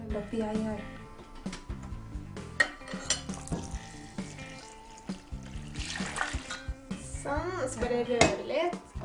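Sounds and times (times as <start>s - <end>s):
speech: 0.2s - 1.0s, 7.6s - 8.9s
kitchenware clinking and knocking: 2.6s - 4.8s, 6.2s - 6.8s
warm water pouring into a mixing container: 3.3s - 6.6s.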